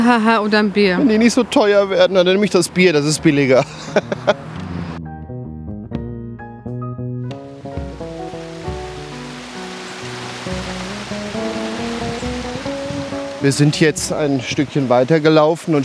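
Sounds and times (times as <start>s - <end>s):
speech: 0.0s - 4.5s, 13.4s - 15.8s
laughter: 3.5s - 4.5s
mountain stream rushing down over stones along a very long slope: 8.2s - 15.8s.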